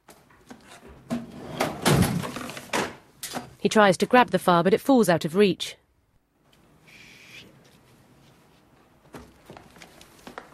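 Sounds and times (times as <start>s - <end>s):
filing cabinet drawer being shut in an office: 1.0s - 3.0s
speech: 3.6s - 5.8s.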